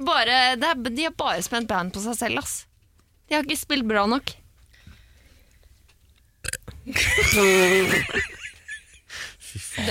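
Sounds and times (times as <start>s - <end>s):
speech: 0.0s - 2.7s, 3.3s - 4.4s, 6.9s - 8.4s, 9.5s - 9.8s
loud drawn-out burp: 6.4s - 7.6s
laughter-like noises: 6.9s - 9.8s.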